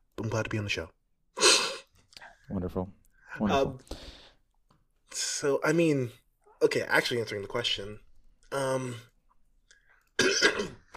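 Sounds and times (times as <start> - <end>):
speech: 0.3 - 1.0, 2.5 - 4.2, 5.1 - 9.1, 10.2 - 10.8
person clearing throat during an interview: 10.2 - 10.9
person coughing during an interview: 10.2 - 10.9.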